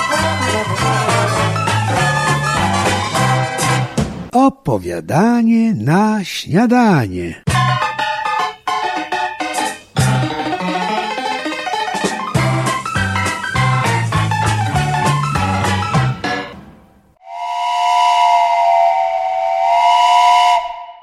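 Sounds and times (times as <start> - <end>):
lively instrumental music: 0.0 - 4.3, 7.0 - 16.9
speech: 4.7 - 7.5
steam train whistle as a passenger train sets off from Koluszki station: 17.2 - 21.0.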